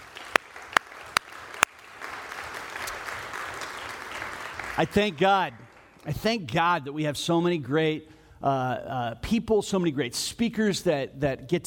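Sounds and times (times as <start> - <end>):
audience applause for the speakers: 0.0 - 6.0
speech: 4.8 - 11.6.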